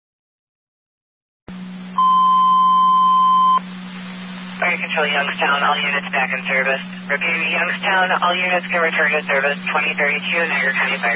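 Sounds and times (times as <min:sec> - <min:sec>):
low constant hum: 0:01.5 - 0:11.1
electronic alarm beep during reset: 0:02.0 - 0:03.6
speech: 0:04.7 - 0:11.1.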